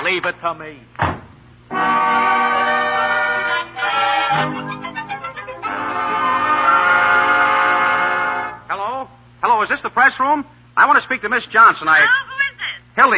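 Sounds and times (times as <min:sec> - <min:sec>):
speech: 0:00.1 - 0:01.1, 0:04.3 - 0:04.8, 0:09.6 - 0:12.3, 0:13.0 - 0:13.1
train horn blaring: 0:01.7 - 0:08.7.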